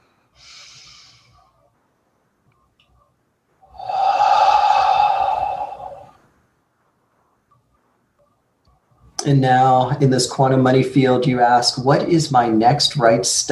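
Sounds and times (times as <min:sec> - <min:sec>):
deep breath in: 0:00.0 - 0:01.6, 0:03.7 - 0:06.2
speech: 0:09.3 - 0:13.4.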